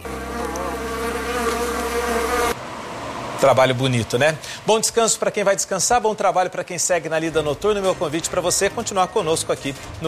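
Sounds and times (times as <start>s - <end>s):
bees buzzing around hives: 0.0s - 3.1s
speech: 3.4s - 10.0s.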